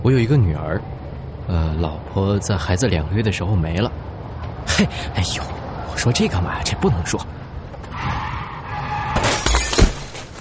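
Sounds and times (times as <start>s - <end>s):
speech: 0.1s - 7.5s
bus brakes screeching: 5.6s - 10.3s
heavy vehicle crashing into a car with crunch of metal: 8.9s - 10.3s
glass shattering: 9.1s - 10.3s
scattered debris: 9.1s - 10.3s.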